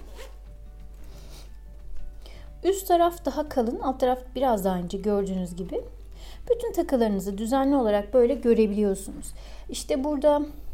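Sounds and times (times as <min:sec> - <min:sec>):
zipper on a small jewelry case opening: 0:00.0 - 0:01.6
speech: 0:02.6 - 0:10.6.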